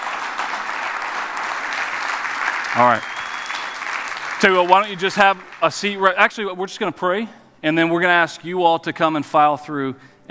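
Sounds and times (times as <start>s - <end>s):
church congregation applauding new members: 0.0s - 6.6s
speech: 2.8s - 3.2s, 4.4s - 10.2s.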